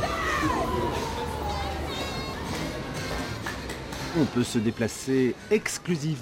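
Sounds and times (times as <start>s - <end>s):
children playing and shouting in Chismigiu park in Bucharest: 0.0s - 2.8s
steady murmur of a crowd: 0.0s - 4.6s
speech: 4.2s - 6.1s.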